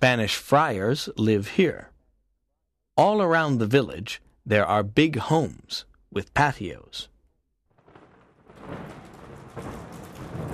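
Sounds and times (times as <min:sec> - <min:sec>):
speech: 0:00.0 - 0:01.9, 0:03.0 - 0:07.1
low rumble of thunder: 0:07.7 - 0:10.5
steady heavy rain: 0:07.8 - 0:10.5.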